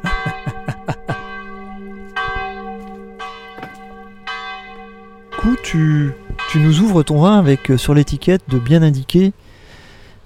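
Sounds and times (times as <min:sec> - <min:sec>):
laughter: 0:00.0 - 0:01.3
church bells ringing: 0:00.0 - 0:09.4
speech: 0:05.6 - 0:09.4.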